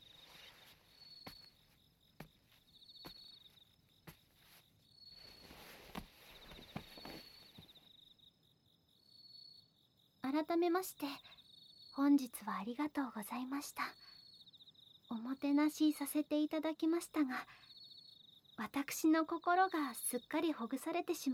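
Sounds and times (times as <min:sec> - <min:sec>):
bell crickets chirping at night: 0:00.0 - 0:21.3
soft footsteps or taps: 0:00.2 - 0:07.8
speech: 0:10.4 - 0:11.3, 0:12.0 - 0:14.0, 0:15.2 - 0:17.6, 0:18.6 - 0:21.3.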